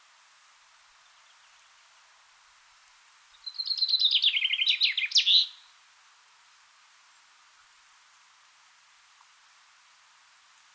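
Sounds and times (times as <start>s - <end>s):
common chaffinch Fringilla coelebs singing: 3.3s - 5.7s.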